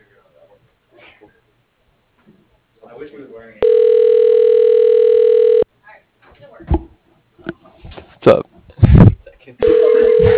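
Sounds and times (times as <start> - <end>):
speech: 3.0 - 3.9, 8.2 - 8.4
telephone ringing tone on a call: 3.6 - 5.7, 9.6 - 10.3.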